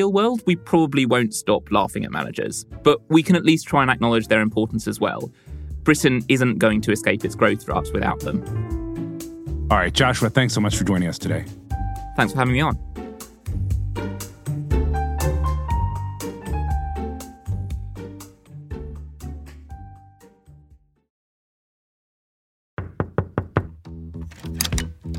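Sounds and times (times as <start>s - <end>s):
speech: 0.0s - 8.8s, 9.7s - 11.6s, 12.2s - 12.9s
music: 0.0s - 21.1s, 23.6s - 25.1s
sharp raps of a knock at a door: 22.8s - 23.8s.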